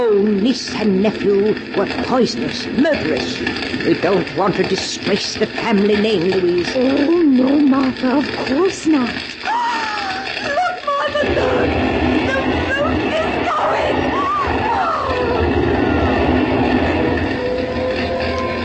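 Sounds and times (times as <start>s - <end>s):
speech: 0.0s - 9.4s
fire engine rumbling engine noise: 0.0s - 18.6s
fire engine siren wailing: 9.4s - 18.6s.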